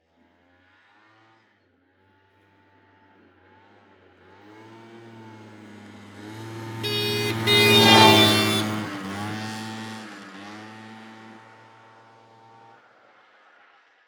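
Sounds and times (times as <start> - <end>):
1994 Piaggio Sfera 50cc scooter passing by: 6.0 - 11.4.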